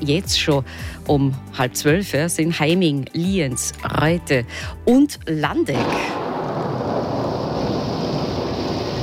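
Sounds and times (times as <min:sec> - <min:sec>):
speech: 0:00.0 - 0:06.2
heavy rain: 0:06.6 - 0:09.0.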